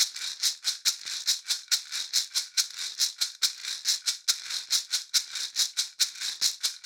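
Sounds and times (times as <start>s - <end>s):
shaker maracas loop: 0.0s - 6.8s.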